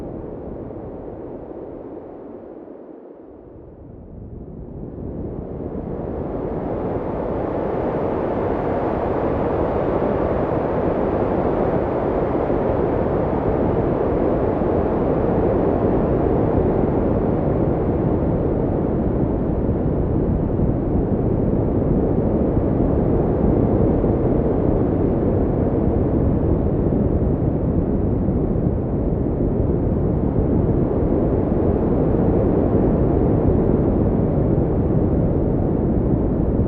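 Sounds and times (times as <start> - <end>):
wind noise: 0.0 - 36.6.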